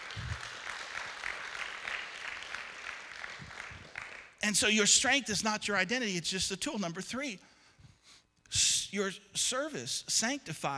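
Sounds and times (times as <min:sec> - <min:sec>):
crowd applauding: 0:00.0 - 0:04.4
speech: 0:04.4 - 0:07.5, 0:08.5 - 0:10.7.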